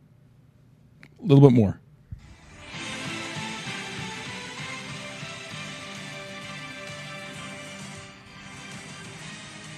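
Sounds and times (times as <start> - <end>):
speech: 1.2 - 1.8
golf broadcast instrumental theme music: 2.3 - 9.7.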